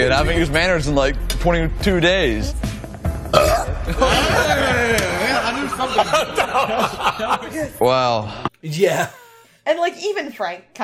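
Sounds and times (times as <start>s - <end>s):
speech: 0.1s - 2.6s, 3.3s - 10.8s
loud belch: 3.3s - 4.0s
laughter: 3.8s - 7.8s.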